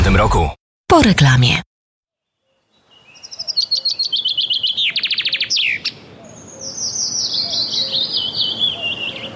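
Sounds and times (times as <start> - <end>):
speech: 0.1 - 1.7
chaffinch singing a descending trill: 2.2 - 9.3.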